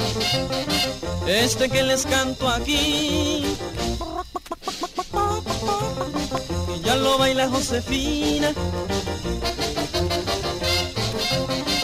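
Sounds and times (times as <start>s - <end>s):
busy musical backing of a twist song: 0.0s - 11.8s
speech: 1.3s - 4.1s, 6.0s - 9.6s
hen clucking: 3.8s - 6.4s.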